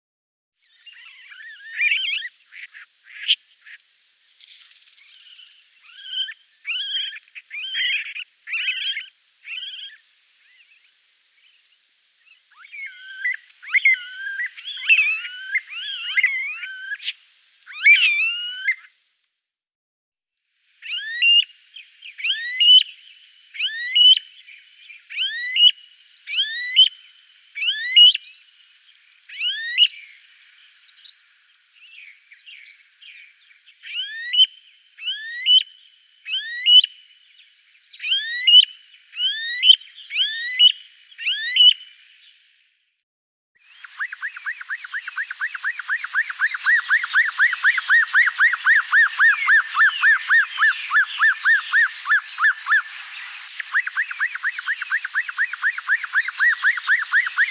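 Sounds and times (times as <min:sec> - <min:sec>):
Smooth-billed ani calling in Guadeloupe: 0:05.0 - 0:10.7, 0:12.3 - 0:18.9, 0:20.8 - 0:42.5, 0:43.7 - 0:57.4.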